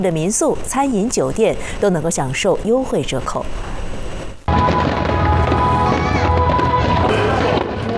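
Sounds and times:
speech: 0.0s - 3.8s
fireworks bursting over the sea: 4.5s - 7.9s.

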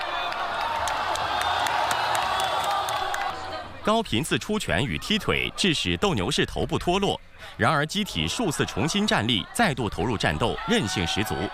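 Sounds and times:
crowd whoops: 0.0s - 3.3s
scattered clapping: 0.0s - 3.4s
large crowd cheering at a humanoid robot fighting match: 0.0s - 5.8s, 7.9s - 11.5s
speech: 3.9s - 11.5s.

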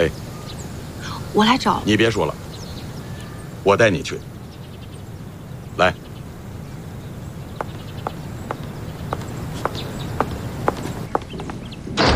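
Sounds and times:
speech: 0.0s - 0.2s, 1.3s - 2.4s, 3.6s - 4.3s, 5.8s - 6.0s
footsteps: 7.5s - 12.0s.

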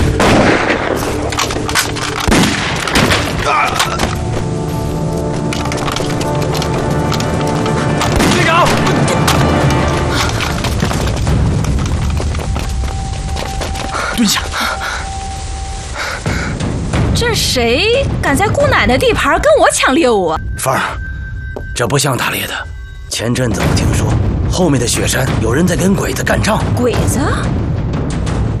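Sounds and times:
sharp gunshots, some distant and echoing: 0.0s - 3.5s, 8.0s - 9.6s
sustained tonal layers of dramatic film music: 0.0s - 28.5s
speech: 17.6s - 21.1s, 21.8s - 27.8s.

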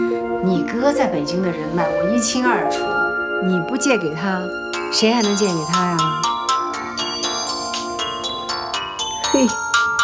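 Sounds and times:
speech: 0.4s - 6.4s, 9.3s - 9.6s
mobile phone melodic electronic ringtone: 4.6s - 10.0s.

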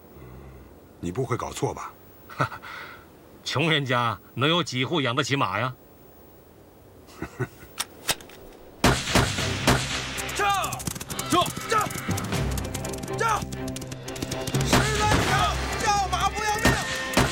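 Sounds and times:
speech: 1.0s - 5.8s, 7.2s - 7.5s
gunshots during a raid to seize horses: 8.8s - 17.3s.

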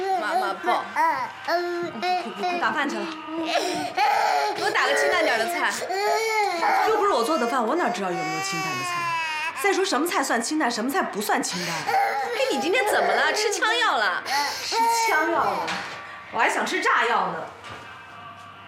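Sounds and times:
baby crying: 0.0s - 10.0s, 11.5s - 15.8s
speech: 0.5s - 17.6s.

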